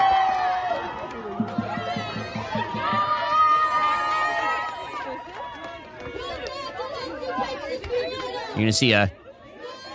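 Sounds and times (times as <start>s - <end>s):
crowd of protesters shouting and screaming: 0.0s - 9.9s
speech: 8.6s - 9.2s.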